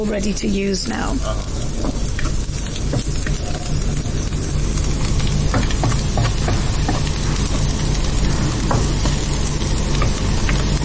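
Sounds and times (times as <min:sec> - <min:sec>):
speech: 0:00.0 - 0:02.1
onions frying brown in a pan: 0:00.0 - 0:10.8
clicks and scrapes of onions being stirred: 0:01.4 - 0:10.8.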